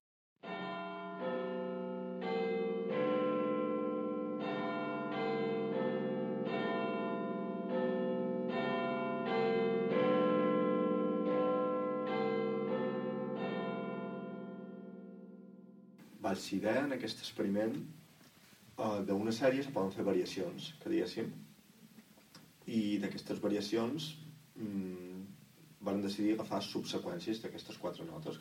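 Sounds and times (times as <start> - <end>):
Big Ben clock tower bells chiming: 0.4 - 15.7
speech: 16.4 - 18.0, 18.8 - 21.5, 22.7 - 24.9, 25.8 - 28.4.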